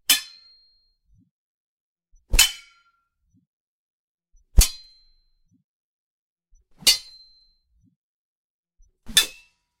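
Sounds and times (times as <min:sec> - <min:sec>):
swords clashing: 0:00.1 - 0:00.5, 0:02.4 - 0:02.8, 0:09.1 - 0:09.5.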